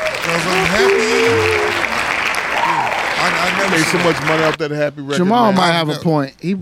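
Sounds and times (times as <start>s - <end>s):
group hand clapping: 0.0s - 4.6s
speech: 3.8s - 6.6s.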